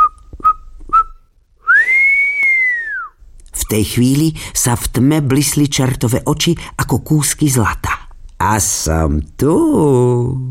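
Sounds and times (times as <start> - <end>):
person whistling timidly: 0.0 - 3.2
speech: 3.7 - 10.4.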